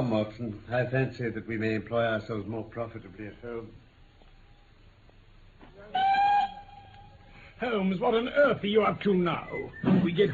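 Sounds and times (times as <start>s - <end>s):
speech: 0.1s - 3.8s, 7.6s - 10.3s
train whistle blast: 6.0s - 6.9s.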